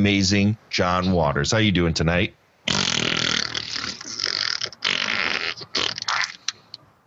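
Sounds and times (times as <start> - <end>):
speech: 0.0 - 2.8
person blowing sputtering fart noises with their mouth: 2.7 - 6.8.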